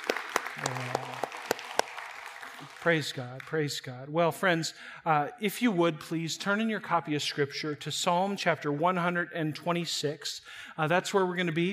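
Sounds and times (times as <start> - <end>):
roomful of people clapping: 0.0 - 3.7
speech: 0.6 - 1.0, 2.8 - 11.7.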